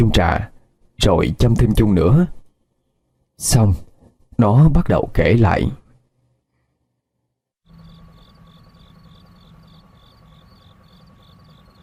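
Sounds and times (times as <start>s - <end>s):
speech: 0.0s - 2.4s, 3.4s - 5.8s
crickets chirping in hibiscus bushes at night: 7.7s - 11.8s.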